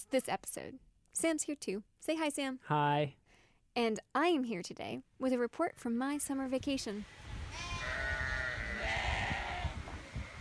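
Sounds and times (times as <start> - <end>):
speech: 0.0 - 3.2, 3.8 - 7.3
sheep bleating: 7.5 - 10.3.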